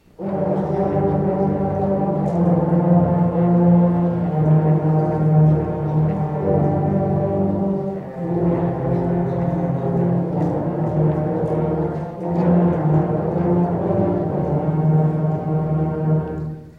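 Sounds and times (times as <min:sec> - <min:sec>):
low brass: 0:00.0 - 0:16.7.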